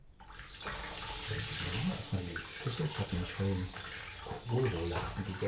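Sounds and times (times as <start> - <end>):
water running from a tap: 0.2 - 5.4
speech: 3.4 - 3.9, 4.5 - 5.4.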